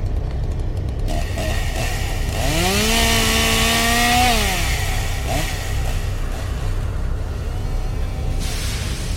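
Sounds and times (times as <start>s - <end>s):
chainsaw revving at a haunted attraction in Lee New Hampshire: 0.1s - 9.1s.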